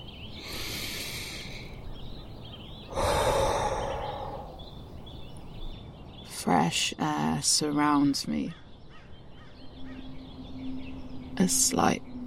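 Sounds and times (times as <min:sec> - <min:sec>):
deep breath taken on stepping outside: 0:00.4 - 0:01.8, 0:02.9 - 0:04.8
speech: 0:06.5 - 0:08.6, 0:11.4 - 0:12.1.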